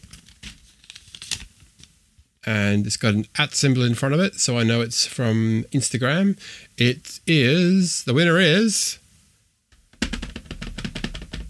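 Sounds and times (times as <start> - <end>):
paper slip crinkling as it is pulled out of a small bag of prize-draw entries: 0.0 - 1.9
speech: 2.5 - 9.0.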